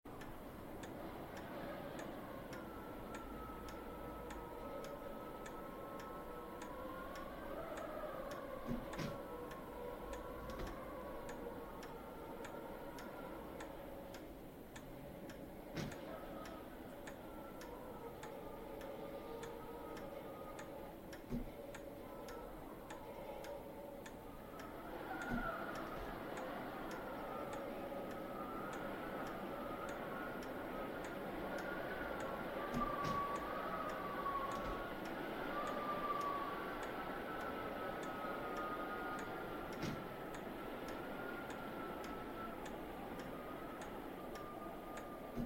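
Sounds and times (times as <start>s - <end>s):
clock ticking in a manor clock room: 0.1s - 45.4s.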